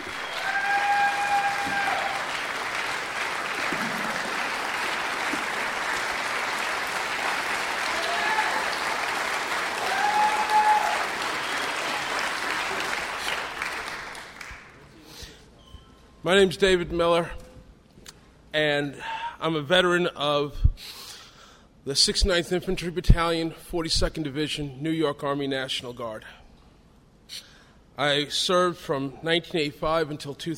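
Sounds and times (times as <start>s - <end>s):
sustained applause from a sizable audience: 0.0s - 14.8s
speech: 16.2s - 17.4s, 18.6s - 21.0s, 21.8s - 26.4s, 27.3s - 30.5s.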